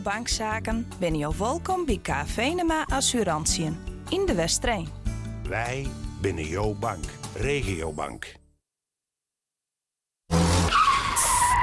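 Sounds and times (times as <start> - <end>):
speech: 0.0 - 8.4
car tires screeching in a skid: 10.3 - 11.6.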